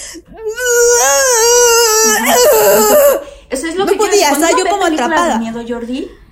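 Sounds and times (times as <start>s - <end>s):
woman imitating a strangled choked scream: 0.5s - 3.3s
speech: 4.3s - 6.2s.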